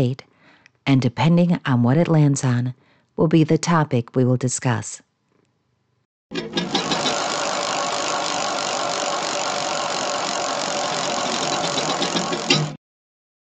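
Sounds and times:
speech: 0.0s - 5.1s, 6.3s - 6.8s
spinning prize wheel clicking against its pointer: 6.4s - 12.8s.

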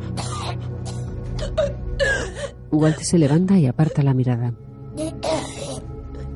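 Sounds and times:
woman lying on her back choking and coughing up vomit: 0.1s - 1.7s, 5.0s - 5.9s
speech: 2.7s - 4.7s.

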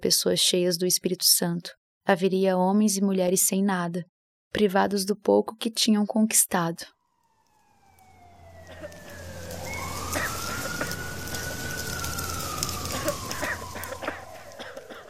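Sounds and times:
speech: 0.0s - 7.0s
fire engine siren as firefighters are called out to a fire: 7.0s - 15.0s.

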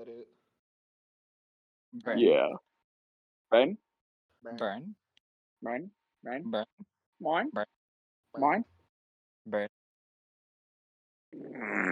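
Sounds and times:
speech: 1.9s - 2.7s, 3.5s - 3.8s, 4.4s - 5.0s, 5.6s - 7.8s, 8.4s - 8.8s, 9.5s - 9.8s, 11.3s - 11.9s
fart: 11.4s - 11.9s.

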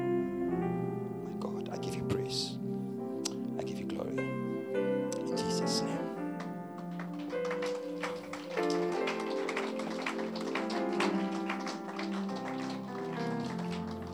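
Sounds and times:
sustained keyboard-like music: 0.0s - 14.1s
audience clapping hands in a steady rhythm: 5.2s - 14.1s.

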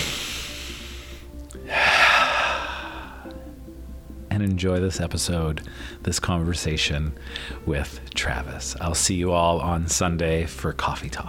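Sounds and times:
big inhale: 0.0s - 3.5s, 5.7s - 6.0s, 7.2s - 7.6s
speech: 4.4s - 11.2s.

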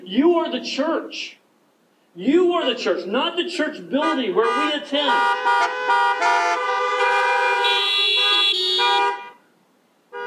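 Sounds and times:
speech: 0.0s - 1.4s, 2.2s - 7.2s
car and truck horns honking: 3.9s - 9.5s.

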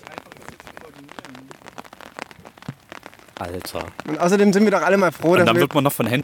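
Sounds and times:
steady rain pattering on a field: 0.0s - 6.2s
speech: 3.4s - 6.2s
person murmuring: 5.4s - 5.8s.

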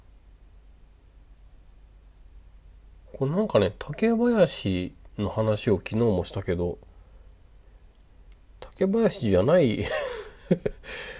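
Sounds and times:
faint high-pitched chirping at night: 0.0s - 9.8s
speech: 3.2s - 6.9s, 8.8s - 11.1s.

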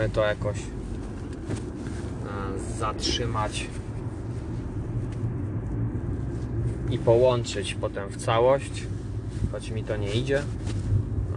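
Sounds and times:
speech: 0.0s - 0.8s, 1.5s - 1.8s, 2.6s - 3.8s, 6.9s - 10.8s
car moving heard from inside the cabin: 0.0s - 11.3s.

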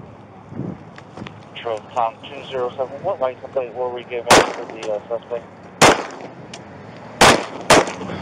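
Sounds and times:
speech: 1.6s - 5.6s
gunshots in police body-camera video: 4.3s - 5.0s, 5.8s - 6.4s, 7.2s - 8.1s.

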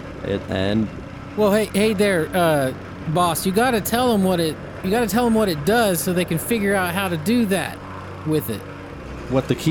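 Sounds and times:
speech: 0.2s - 8.7s, 9.3s - 9.6s
voice imitating an excavator engine being started: 1.4s - 8.6s.

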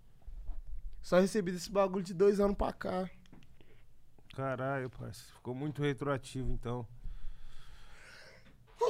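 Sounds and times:
speech: 1.0s - 3.2s, 4.4s - 7.0s
breathy inhale: 7.0s - 8.6s.

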